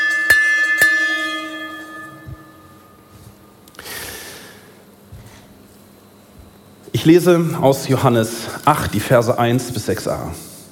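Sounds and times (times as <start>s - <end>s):
bell strikes to start a round: 0.0s - 3.2s
speech: 7.0s - 10.5s.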